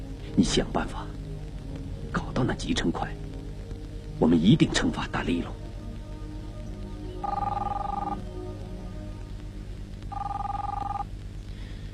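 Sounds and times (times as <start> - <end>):
speech: 0.4 - 1.2, 2.4 - 3.2, 4.2 - 5.6
telephone ringing with a buzzing mid-pitched trill: 7.2 - 8.2, 10.1 - 11.1.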